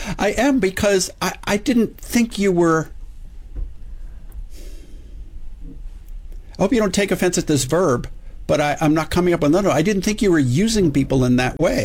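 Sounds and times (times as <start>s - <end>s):
person gasping in surprise: 0.0s - 0.2s
low rumble: 0.0s - 11.8s
speech: 0.1s - 3.0s, 6.6s - 11.8s.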